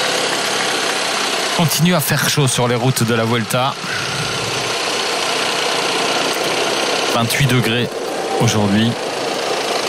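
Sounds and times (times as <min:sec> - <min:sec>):
car engine running steadily, heard from inside: 0:00.0 - 0:09.8
road and wind noise inside a moving car: 0:00.0 - 0:09.8
speech: 0:01.6 - 0:04.2, 0:07.2 - 0:09.1.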